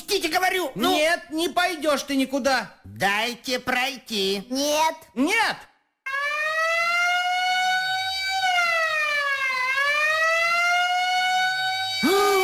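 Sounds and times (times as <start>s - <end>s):
speech: 0.2s - 5.7s
fire engine siren wailing: 6.1s - 12.4s.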